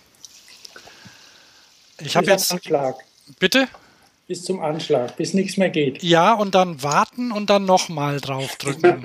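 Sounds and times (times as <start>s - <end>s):
over-carbonated SodaStream water being poured: 0.0s - 3.4s
speech: 2.0s - 9.0s.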